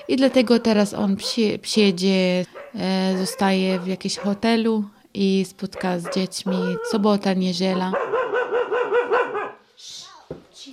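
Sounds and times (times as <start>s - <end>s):
dog barking: 0.0s - 1.6s, 2.5s - 4.5s, 5.7s - 9.6s
speech: 0.1s - 8.2s.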